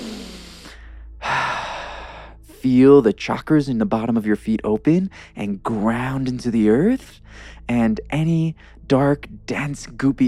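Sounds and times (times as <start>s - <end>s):
deep breath drawn in during a guided meditation exercise: 0.0s - 2.4s
speech: 2.6s - 10.2s.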